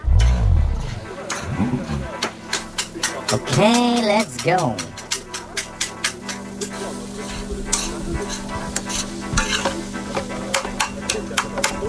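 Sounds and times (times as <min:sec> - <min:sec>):
low hum: 0:00.0 - 0:02.1
laughter: 0:01.0 - 0:02.4
speech: 0:01.6 - 0:02.2, 0:03.3 - 0:04.9
utensil stirring and scraping through food in a pan: 0:02.6 - 0:11.8
food seasoned with garlic granules and paprika sizzling in a hot pan: 0:05.0 - 0:11.8.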